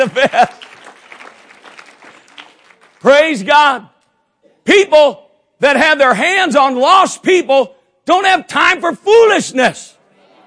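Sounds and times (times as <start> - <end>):
speech: 0.0 - 0.6, 3.0 - 3.9, 4.7 - 10.0
laughter: 0.0 - 1.0, 10.1 - 10.4
audience clapping: 0.0 - 3.6.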